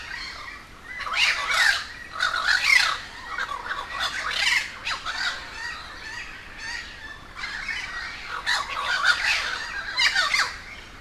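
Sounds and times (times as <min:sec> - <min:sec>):
group of crows squawking in Humboldt Park, Cuba: 0:00.0 - 0:10.7.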